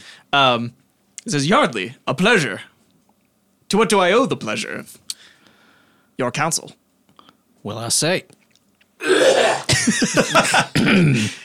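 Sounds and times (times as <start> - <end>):
speech: 0.3 - 2.7, 3.7 - 5.0, 6.2 - 6.8, 7.6 - 8.4, 9.0 - 11.4
person clearing throat with wet gurgling spitting rasps: 9.0 - 11.4.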